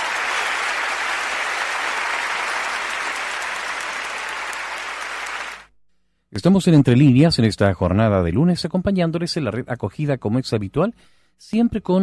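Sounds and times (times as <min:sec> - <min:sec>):
audience applause: 0:00.0 - 0:05.7
speech: 0:06.4 - 0:12.0.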